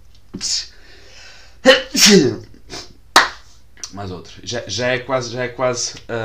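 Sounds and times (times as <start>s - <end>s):
speech: 0.4s - 0.7s, 2.0s - 2.4s, 4.0s - 6.2s
person sneezing: 1.6s - 3.0s.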